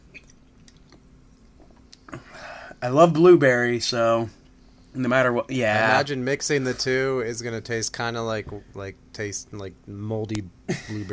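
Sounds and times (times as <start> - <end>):
slurp and swallow: 0.0 - 1.8
beer sipping: 0.0 - 2.4
speech: 2.8 - 4.4, 5.0 - 11.1.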